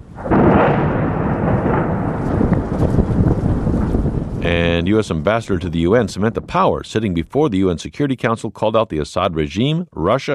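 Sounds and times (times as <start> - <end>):
bombing blast in eastern Aleppo during a military assault: 0.0 - 7.3
speech: 4.8 - 10.3.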